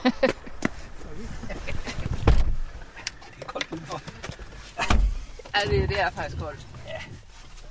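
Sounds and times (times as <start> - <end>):
people shuffling into a car: 0.2 - 7.7
heavy car doors thudding shut: 2.1 - 2.6, 4.8 - 6.6
rustling: 4.4 - 7.7
speech: 5.6 - 7.1.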